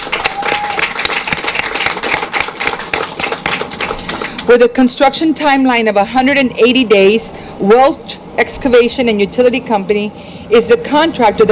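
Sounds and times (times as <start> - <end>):
crowd applause: 0.0 - 4.5
speech: 4.5 - 11.4.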